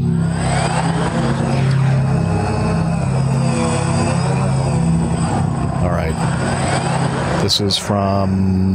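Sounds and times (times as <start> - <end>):
drone propellers whirring with a steady buzz: 0.0 - 8.7
speech: 7.5 - 8.7.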